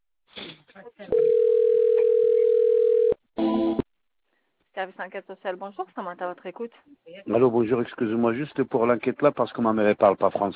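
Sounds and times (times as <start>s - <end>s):
telephone ringing tone during a call transfer to an advisor: 1.1s - 3.2s
speech: 4.8s - 10.5s.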